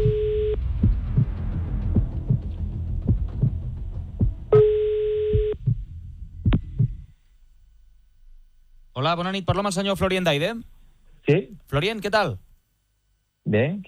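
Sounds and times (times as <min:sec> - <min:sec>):
low rhythmic thumping pulse: 0:00.0 - 0:11.6
telephone ringing tone while a call is dialed: 0:04.6 - 0:05.6
speech: 0:09.0 - 0:12.4, 0:13.4 - 0:13.8.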